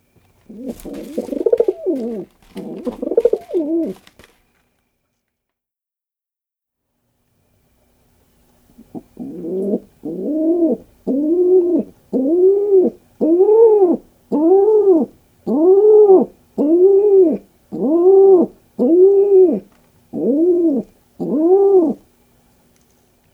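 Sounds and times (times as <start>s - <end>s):
Rock Pigeon: 0.4s - 4.2s, 8.8s - 22.1s.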